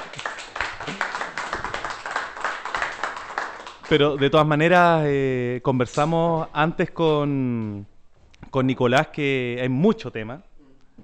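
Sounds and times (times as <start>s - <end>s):
audience applause at a workers' forum on industrial self-management: 0.0s - 4.4s
speech: 3.9s - 10.5s.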